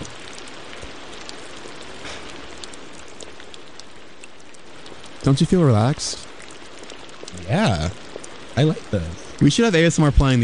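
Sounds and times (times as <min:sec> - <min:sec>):
rain pattering onto a surface in ASMR sleep recording: 0:00.0 - 0:10.4
speech: 0:05.2 - 0:06.2, 0:07.5 - 0:08.0, 0:08.6 - 0:10.4.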